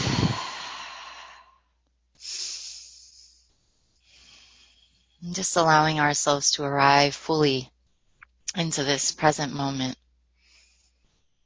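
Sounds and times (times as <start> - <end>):
people taking deep breaths during an opening prayer: 0.0 - 1.6, 2.2 - 5.2
speech: 5.2 - 7.7, 8.5 - 10.0.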